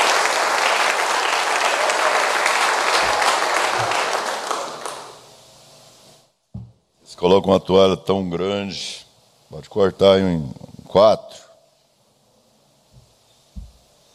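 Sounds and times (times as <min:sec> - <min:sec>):
crowd clapping: 0:00.0 - 0:05.4
soft thump: 0:06.5 - 0:06.8
speech: 0:07.2 - 0:11.4.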